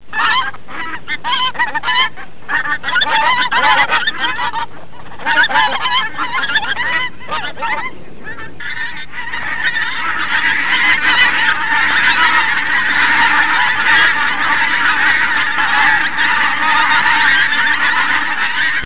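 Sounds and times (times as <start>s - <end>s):
gander honking: 0.1s - 18.8s.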